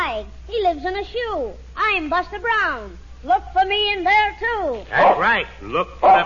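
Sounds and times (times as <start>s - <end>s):
speech: 0.2s - 6.2s
dog barking: 4.9s - 5.4s, 6.0s - 6.2s
dog whining: 6.0s - 6.2s.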